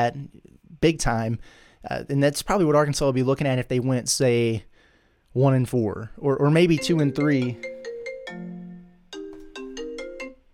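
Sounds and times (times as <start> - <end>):
speech: 0.0 - 4.7, 5.3 - 7.7
phone ringtone for an incoming call: 6.7 - 10.5.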